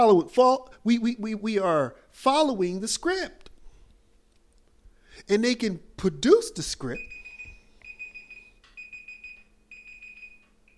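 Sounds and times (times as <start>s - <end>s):
speech: 0.0s - 3.4s, 5.2s - 7.1s
low steady hum: 0.0s - 10.7s
digital timer alarm beeping: 7.0s - 10.7s.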